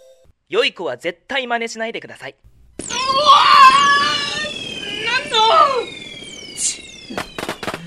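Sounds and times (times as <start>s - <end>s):
speech: 0.5s - 2.5s, 6.6s - 7.3s
rocket fireworks whistling: 2.8s - 7.8s.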